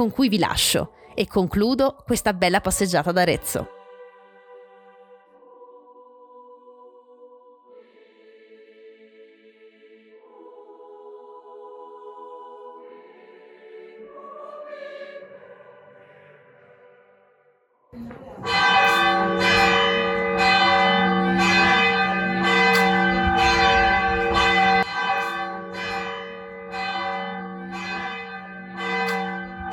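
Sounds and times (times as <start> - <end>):
speech: 0.0 - 3.8
church bells ringing: 18.4 - 29.7.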